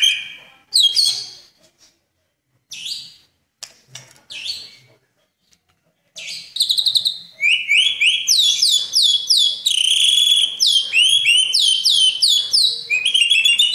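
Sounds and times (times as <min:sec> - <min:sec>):
Oriental magpie-robin singing whistles and chattering trills: 0:00.0 - 0:01.5, 0:02.7 - 0:03.3, 0:06.2 - 0:13.7.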